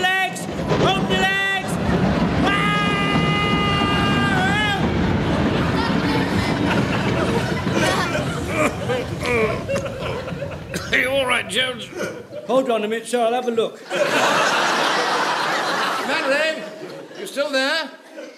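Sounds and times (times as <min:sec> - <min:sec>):
steam train passing overhead rumbling and clattering: 0:00.0 - 0:12.3
laughter: 0:01.7 - 0:12.8, 0:13.8 - 0:18.3
speech: 0:12.5 - 0:14.3, 0:17.4 - 0:18.0.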